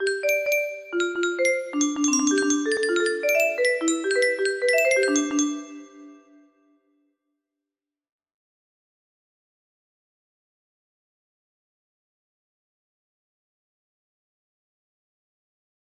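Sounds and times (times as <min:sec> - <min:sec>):
music box melody: 0:00.0 - 0:06.3.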